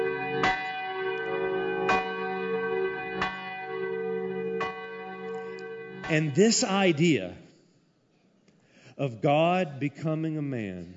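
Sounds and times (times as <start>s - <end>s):
distant church bell tolling: 0.0s - 7.5s
speech: 6.1s - 7.4s, 9.0s - 10.9s.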